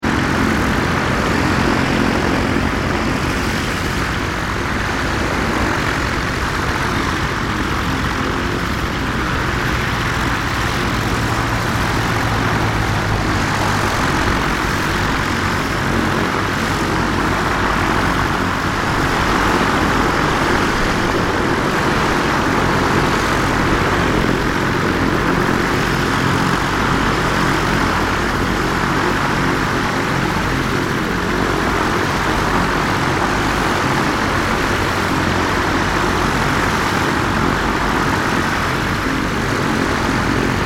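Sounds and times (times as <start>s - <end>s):
light aircraft propellers queuing up to take off at a small airfield: 0.0s - 40.6s
small airport airfield ambience: 0.0s - 40.6s.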